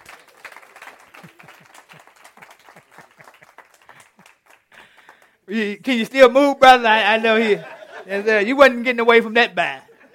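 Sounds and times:
audience applause: 0:00.0 - 0:05.3
speech: 0:05.5 - 0:09.9.

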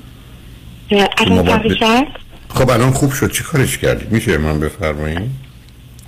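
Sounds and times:
garbled distorted voice over a phone line: 0:00.9 - 0:02.2
speech: 0:00.9 - 0:05.4.

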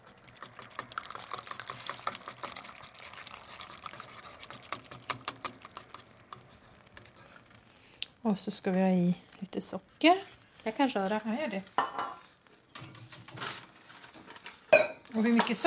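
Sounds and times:
potato starch mixture poured into soup: 0:00.0 - 0:08.2
soup bubbling: 0:00.0 - 0:12.8
utensil clicking and scraping while stirring a pot of soup: 0:00.0 - 0:15.6
speech: 0:08.2 - 0:12.0, 0:15.2 - 0:15.6.

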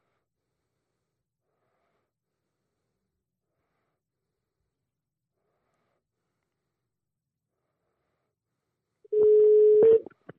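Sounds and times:
telephone dial tone: 0:09.1 - 0:10.0.

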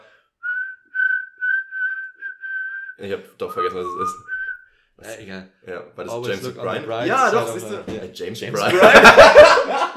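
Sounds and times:
person whistling a tune: 0:00.4 - 0:04.8
speech: 0:03.0 - 0:04.3, 0:05.0 - 0:09.8
laughter: 0:08.6 - 0:09.9.

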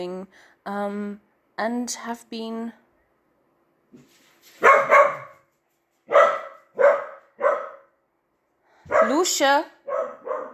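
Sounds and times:
speech: 0:00.0 - 0:02.8, 0:09.1 - 0:10.1
dogs barking at a passing neighbor: 0:04.6 - 0:05.5, 0:06.1 - 0:08.0, 0:08.9 - 0:10.5.

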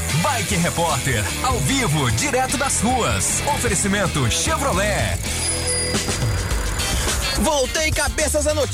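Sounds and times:
speech: 0:00.4 - 0:06.3, 0:07.4 - 0:08.7
busy road traffic at a viaduct: 0:02.8 - 0:08.5
vehicles rumbling past: 0:03.3 - 0:08.3.

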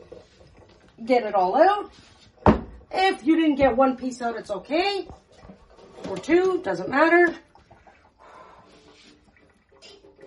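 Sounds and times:
water draining from potatoes through a strainer: 0:00.0 - 0:10.2
speech: 0:01.0 - 0:02.1, 0:03.0 - 0:05.2, 0:06.1 - 0:07.4.

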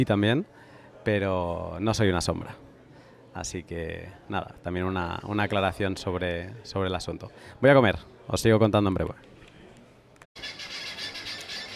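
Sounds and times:
speech: 0:00.0 - 0:02.6, 0:03.4 - 0:09.3
birds chirping at a hotel: 0:10.4 - 0:11.7.

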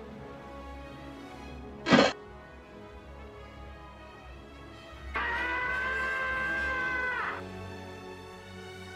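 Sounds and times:
short sharp burst: 0:01.9 - 0:02.2
crowd shouting outside: 0:05.2 - 0:07.4.

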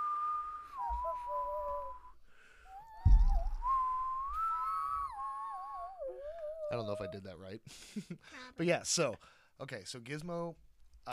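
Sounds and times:
person whistling a melody imitating a creature's cooing song: 0:00.0 - 0:07.2
brief thump: 0:03.0 - 0:04.0
speech: 0:06.7 - 0:11.1.

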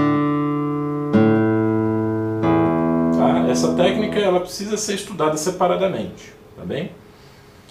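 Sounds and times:
slow plucked guitar arpeggio with thumb muting: 0:00.0 - 0:05.0
speech: 0:03.6 - 0:07.0.

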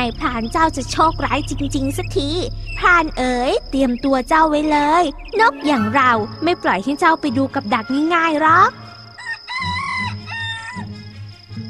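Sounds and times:
speech: 0:00.0 - 0:08.8
low steady hum: 0:00.0 - 0:09.0
jungle fowl crowing: 0:08.8 - 0:11.0.

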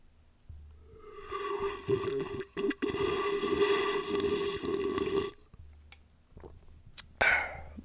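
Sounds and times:
slurping and gulping water from a plastic bottle: 0:01.0 - 0:05.4
short gasp or swallow: 0:07.2 - 0:07.8.

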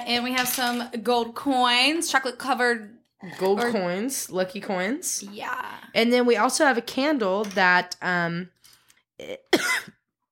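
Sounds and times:
speech: 0:00.1 - 0:08.6, 0:09.2 - 0:10.0
person coughing after choking: 0:09.5 - 0:10.0.

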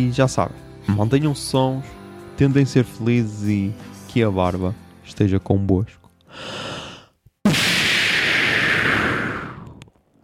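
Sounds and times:
speech: 0:00.0 - 0:06.7
smoke bomb bursting with a sharp pop and hissing: 0:07.4 - 0:09.9.

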